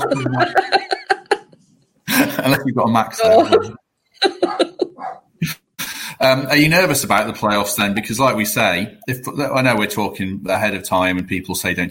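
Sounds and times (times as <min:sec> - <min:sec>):
laughter: 0:00.0 - 0:06.1
speech: 0:00.1 - 0:00.9, 0:02.6 - 0:03.8, 0:06.2 - 0:11.8
dog barking in sharp yappy barks and rough breathy bursts: 0:04.5 - 0:05.3.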